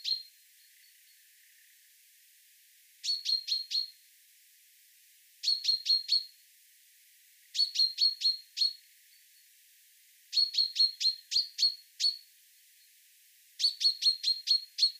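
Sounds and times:
Common chaffinch Fringilla coelebs chirping: 0:00.0 - 0:01.9, 0:03.0 - 0:04.0, 0:05.4 - 0:06.4, 0:07.5 - 0:09.5, 0:10.3 - 0:12.3, 0:13.6 - 0:14.9.

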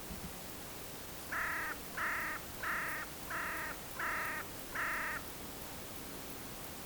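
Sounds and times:
constant background hiss: 0:00.0 - 0:06.8
carrion crow Corvus corone giving harsh hoarse caws: 0:01.3 - 0:05.2.

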